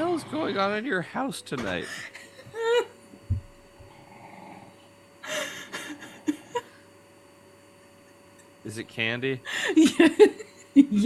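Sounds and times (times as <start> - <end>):
female dog grumbling: 0.0 - 0.9, 3.8 - 4.8
speech: 0.5 - 2.2, 8.7 - 11.0
laughter: 5.3 - 6.7, 9.5 - 11.0.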